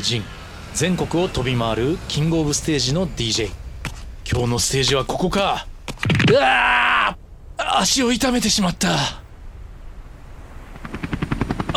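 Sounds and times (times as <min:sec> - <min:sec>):
speech: 0:00.0 - 0:03.6, 0:04.3 - 0:05.7, 0:06.3 - 0:09.2
helicopter low engine rumble: 0:00.0 - 0:11.7
helicopter rotor chopping while flying overhead: 0:00.0 - 0:11.7.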